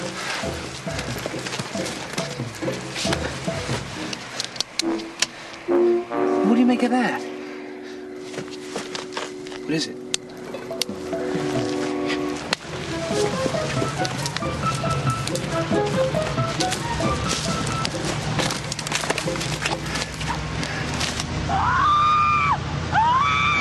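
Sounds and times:
dense crackling wash of noise: 0:00.0 - 0:21.4
speech: 0:06.7 - 0:07.3, 0:09.7 - 0:10.0
recorded screams played back through speakers: 0:21.5 - 0:23.6.

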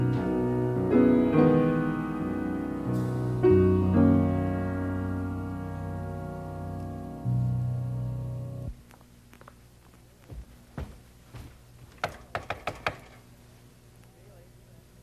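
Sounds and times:
held musical chord: 0:00.0 - 0:08.7
scattered thumps: 0:11.9 - 0:13.2
sharp raps on a door: 0:12.0 - 0:13.2.

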